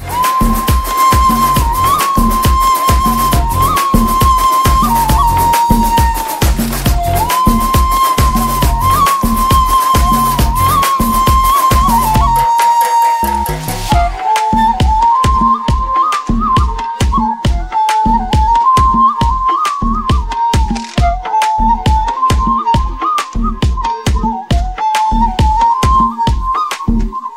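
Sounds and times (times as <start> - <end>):
Tamil flute background music: 0.0 - 27.3.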